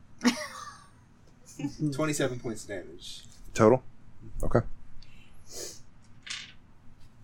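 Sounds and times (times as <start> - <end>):
low hum: 0.0 - 7.2
speech: 1.6 - 4.8
dice rattling and clattering across a table: 6.0 - 6.6.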